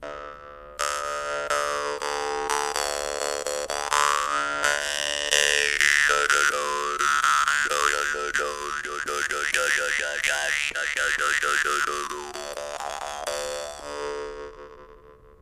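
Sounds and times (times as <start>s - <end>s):
dan moi jaw harp: 0.0s - 15.4s.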